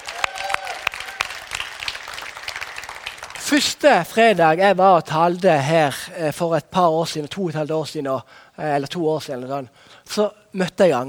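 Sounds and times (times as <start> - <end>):
faint whoops or calls: 0.0 - 1.5
audience applause with many hands clapping: 0.0 - 3.6
speech: 3.5 - 11.0.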